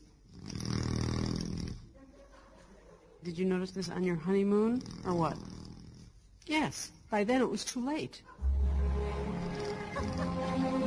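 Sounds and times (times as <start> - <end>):
man snoring with a loud rumbling rattle: 0.0 - 1.9, 4.6 - 6.2, 9.4 - 10.8
speech: 3.2 - 5.5, 6.5 - 8.3.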